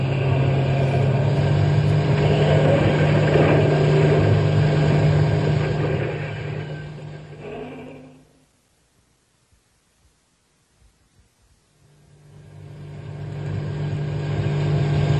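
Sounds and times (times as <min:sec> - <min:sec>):
car engine roaring: 0:00.0 - 0:08.4, 0:11.8 - 0:15.1.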